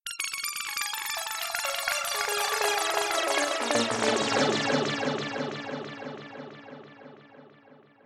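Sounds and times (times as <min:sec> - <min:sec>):
arpeggios: 0:00.2 - 0:08.0.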